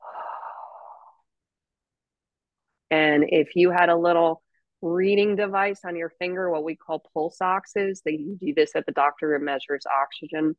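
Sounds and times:
person breathing during a breathwork exercise: 0.0 - 1.2
speech: 2.9 - 10.5.

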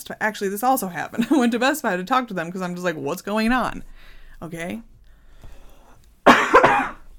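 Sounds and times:
speech: 0.0 - 4.9
person coughing: 6.2 - 7.1.

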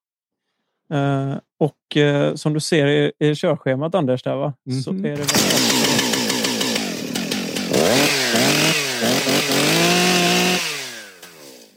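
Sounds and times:
speech: 0.9 - 5.8
chainsaw revving and cutting wood: 5.2 - 11.7.

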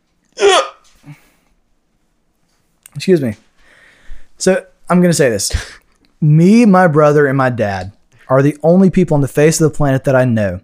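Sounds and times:
loud hiccup: 0.4 - 0.9
speech: 3.0 - 3.5, 4.4 - 10.6.

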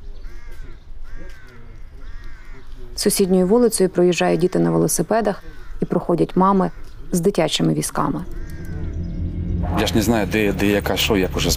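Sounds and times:
flock of ravens cawing near a morgue: 0.2 - 2.8, 4.2 - 7.0, 8.2 - 9.4
speech: 3.0 - 8.5, 9.8 - 11.5.

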